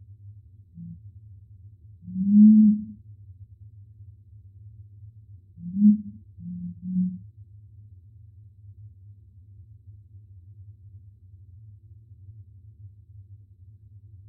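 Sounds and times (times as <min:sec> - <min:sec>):
low steady hum: 0:00.0 - 0:14.2
curassow uttering low humming booms: 0:02.1 - 0:03.0, 0:05.6 - 0:07.2.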